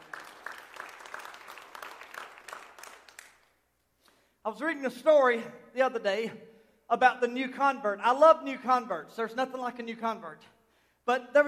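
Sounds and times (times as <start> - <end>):
audience clapping hands in praise to God: 0.0 - 3.7
speech: 4.4 - 11.4.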